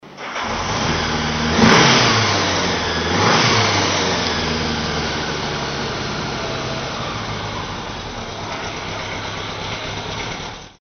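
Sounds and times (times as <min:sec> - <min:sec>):
Honda 1000 Goldwing motorcycle engine: 0:00.0 - 0:10.7.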